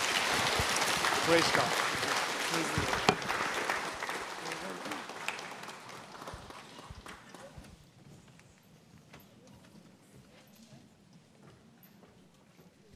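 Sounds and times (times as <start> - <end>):
audience clapping: 0.0 - 7.8
speech: 1.3 - 1.9, 2.5 - 3.2.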